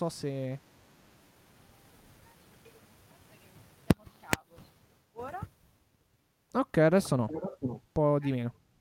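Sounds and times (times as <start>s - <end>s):
speech: 0.0s - 0.7s, 6.6s - 8.6s
steady low microphone hiss: 0.0s - 8.7s
sharp crackling pops: 3.8s - 4.8s.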